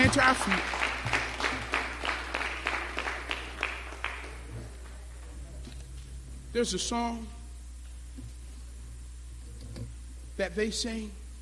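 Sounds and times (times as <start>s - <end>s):
crowd clapping in a reverberant room: 0.0s - 5.5s
speech: 0.1s - 1.2s, 6.6s - 7.4s, 10.4s - 11.2s.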